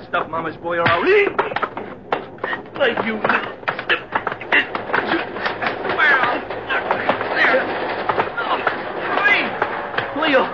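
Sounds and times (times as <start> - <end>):
shuffling bodies in a scuffle aboard a train: 0.0 - 10.5
steady mechanical rumble of a moving train: 0.0 - 10.5
speech: 0.1 - 1.6, 2.5 - 3.6
thumps and slams of a scuffle aboard a train: 0.8 - 10.5
strained voices shouting: 2.7 - 10.5.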